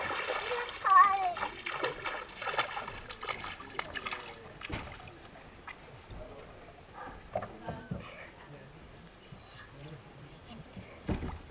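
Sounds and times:
very cold water splashing in a basin as a foot is put in: 0.0 - 6.1
murmur of voices: 0.0 - 11.4.

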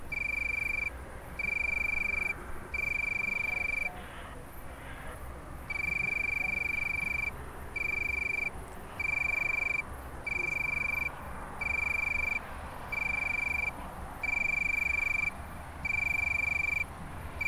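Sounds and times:
soft background noise: 0.0 - 17.4
tree cricket trilling: 0.0 - 17.4.

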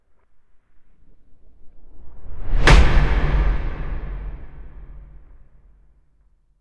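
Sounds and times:
strong cinematic hit: 2.3 - 5.8.

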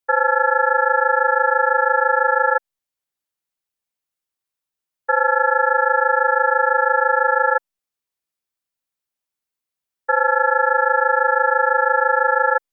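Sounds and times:
synthesized telephone sound made in Pure Data: 0.1 - 2.6, 5.1 - 7.6, 10.1 - 12.6.

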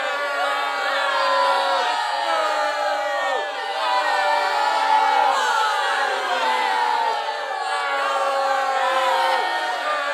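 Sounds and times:
crowd booing and hissing: 0.0 - 10.1.

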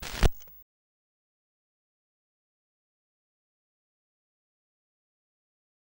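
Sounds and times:
vinyl record noise: 0.0 - 0.6.

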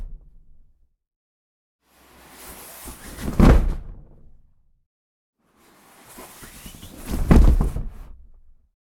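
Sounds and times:
body falling on wooden floor with vinyl floor covering: 3.2 - 3.9, 7.0 - 8.1.

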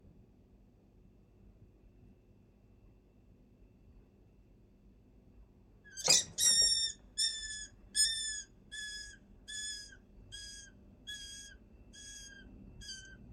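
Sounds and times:
rat distress calls: 5.9 - 13.3.

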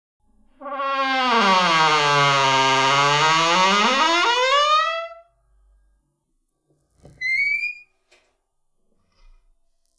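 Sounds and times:
very creaking door: 0.5 - 5.3, 6.9 - 8.3.

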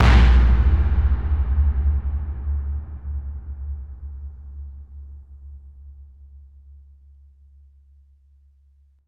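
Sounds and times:
cannon: 0.0 - 3.8.

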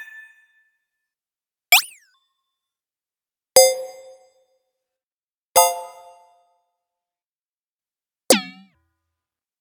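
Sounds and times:
button clicks: 1.7 - 2.0, 8.3 - 8.7.

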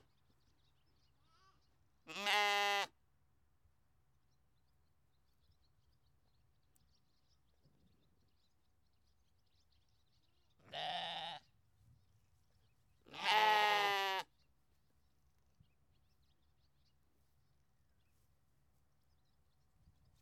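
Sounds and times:
Belgian sheep bleating: 2.1 - 2.9, 10.7 - 11.4, 13.1 - 14.3.

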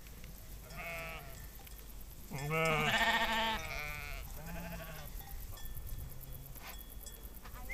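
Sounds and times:
sheep bleating: 0.7 - 1.4, 2.3 - 5.1.

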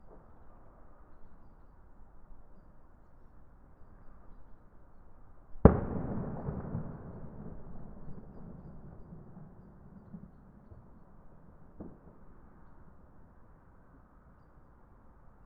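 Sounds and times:
distant small explosion in a city: 5.6 - 12.3.

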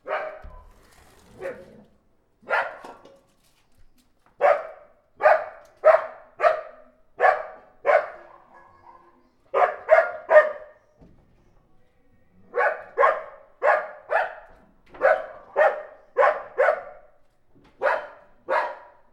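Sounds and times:
dog barking: 0.0 - 0.6, 1.4 - 1.8, 2.4 - 3.0, 4.4 - 10.8, 12.5 - 17.2, 17.8 - 19.1.

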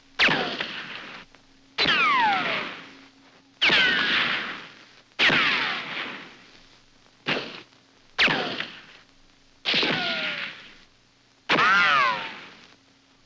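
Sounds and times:
rifle ricochets: 0.2 - 1.2, 1.8 - 2.9, 3.6 - 6.4, 7.3 - 9.0, 9.7 - 10.8, 11.5 - 12.7.

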